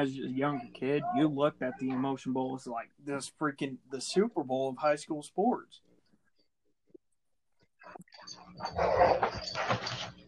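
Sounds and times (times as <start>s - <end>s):
speech: 0.0s - 5.9s, 7.9s - 10.2s
dogs whimpering and barking excitedly: 8.1s - 10.2s.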